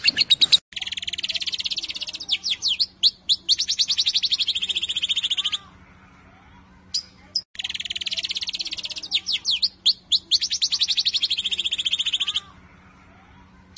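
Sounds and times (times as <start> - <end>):
lovebird chirping: 0.0 - 5.6, 6.9 - 12.5.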